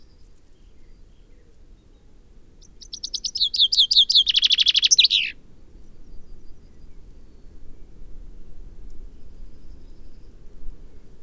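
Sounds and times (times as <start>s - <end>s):
common chaffinch Fringilla coelebs song: 2.6s - 5.4s.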